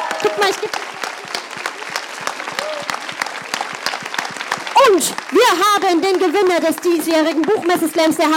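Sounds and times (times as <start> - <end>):
audience applause at a book fair slam: 0.0 - 8.3
speech: 0.2 - 1.0, 4.9 - 8.3.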